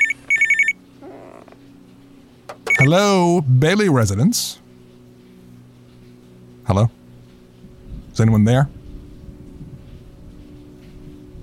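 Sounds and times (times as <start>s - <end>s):
telephone bell ringing in a house: 0.0s - 0.8s, 2.6s - 3.0s
speech: 2.8s - 4.6s, 6.7s - 7.0s, 8.2s - 8.8s.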